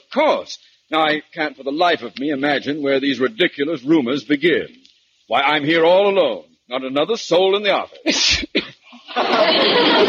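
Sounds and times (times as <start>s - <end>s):
steady noisy hiss: 0.0s - 10.0s
speech: 0.1s - 10.0s
person sneezing: 8.0s - 9.0s
laughter: 9.0s - 10.0s.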